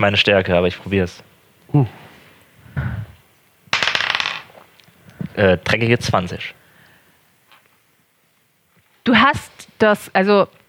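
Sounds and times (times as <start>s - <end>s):
speech: 0.0s - 2.0s, 5.4s - 6.6s, 9.0s - 10.6s
dice clattering onto a hard table: 3.7s - 4.6s.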